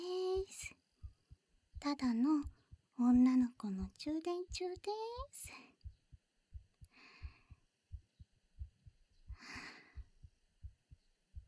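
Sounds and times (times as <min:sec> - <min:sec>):
steady heartbeat: 0:00.3 - 0:11.4
speech: 0:01.9 - 0:05.8
soft breathing of two people hugging: 0:06.8 - 0:07.7, 0:09.2 - 0:10.4.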